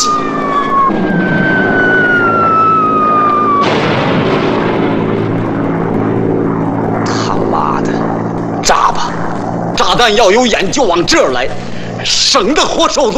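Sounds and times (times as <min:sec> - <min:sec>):
propeller airplane flying overhead: 0:00.0 - 0:13.1
speech: 0:10.0 - 0:13.1.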